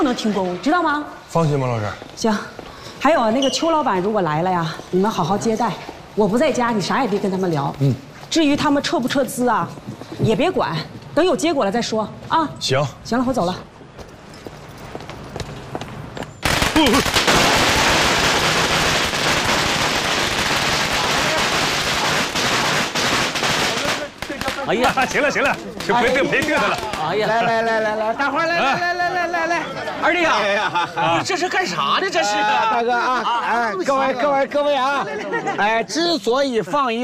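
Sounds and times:
speech: 0:00.1 - 0:13.7, 0:16.8 - 0:17.1, 0:24.7 - 0:37.0
long string of firecrackers exploding: 0:16.4 - 0:27.2
laughter: 0:24.7 - 0:36.0.

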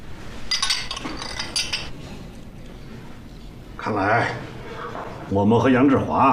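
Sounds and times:
glasses clinking in a toast: 0:00.5 - 0:02.0
speech: 0:03.8 - 0:04.5, 0:05.3 - 0:06.3.

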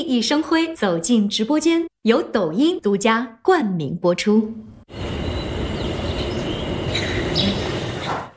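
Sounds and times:
speech: 0:00.1 - 0:05.0
steady hum: 0:04.9 - 0:08.2.

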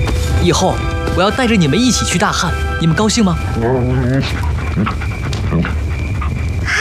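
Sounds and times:
mastiffs panting: 0:00.1 - 0:06.7
speech: 0:00.5 - 0:05.8
mastiffs whimpering with a high whining cry: 0:03.6 - 0:06.7.

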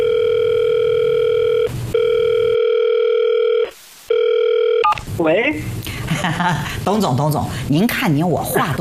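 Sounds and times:
steady loud telephone dial tone: 0:00.0 - 0:04.9
speech: 0:05.2 - 0:08.7.

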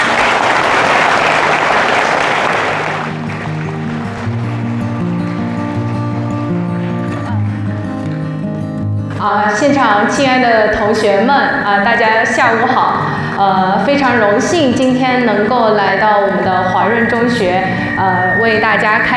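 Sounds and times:
crowd applause: 0:00.0 - 0:07.6
sustained musical tones: 0:02.8 - 0:09.0, 0:16.2 - 0:19.1
speech: 0:09.9 - 0:19.1.

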